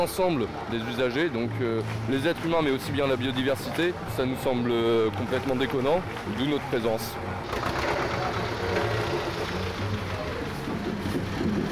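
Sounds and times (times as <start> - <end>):
speech: 0.0 - 7.8
farmer's tractor engine running: 7.3 - 11.7.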